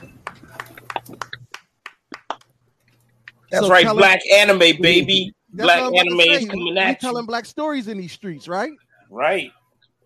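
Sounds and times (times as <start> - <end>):
hand clapping from a few people: 0.0 - 2.6
low hum: 0.0 - 10.0
speech: 3.5 - 9.6.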